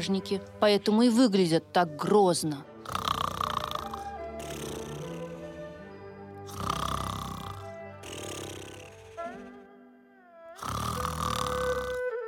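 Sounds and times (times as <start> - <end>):
speech: 0.0 - 3.0
loud rasping snoring: 2.8 - 9.7, 10.6 - 12.2.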